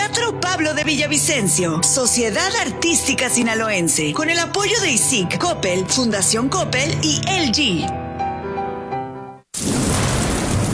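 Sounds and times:
sustained musical tones: 0:00.0 - 0:09.4
speech: 0:00.2 - 0:08.0
loud downpour of heavy rain: 0:09.6 - 0:10.7
deep rumble of thunder: 0:09.7 - 0:10.7.

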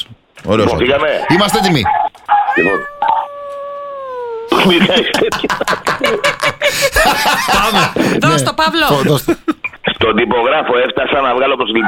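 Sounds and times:
speech: 0:00.5 - 0:02.0, 0:02.6 - 0:02.9, 0:04.6 - 0:11.8
dog howling: 0:02.3 - 0:04.5
laughter: 0:04.5 - 0:08.2.

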